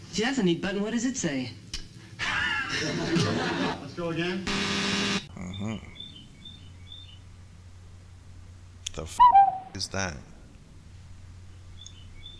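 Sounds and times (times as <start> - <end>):
low steady hum: 0.0 - 12.3
speech: 0.2 - 1.6, 2.7 - 5.9, 9.0 - 10.3
laughter: 2.2 - 4.0
faint high bird chirps outdoors in spring in St. Louis: 5.3 - 7.3, 9.1 - 9.8, 11.4 - 12.3.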